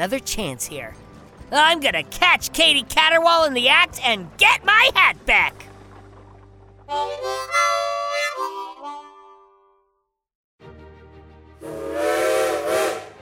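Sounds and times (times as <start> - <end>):
speech: 0.0 - 5.7, 6.9 - 7.9
steam train whistle blasts: 11.6 - 13.1.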